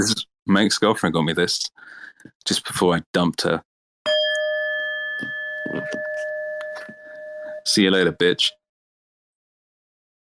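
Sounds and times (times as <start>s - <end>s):
speech: 0.0s - 3.7s, 5.7s - 6.1s, 7.7s - 8.6s
struck Tibetan singing bowl ringing: 4.1s - 8.2s.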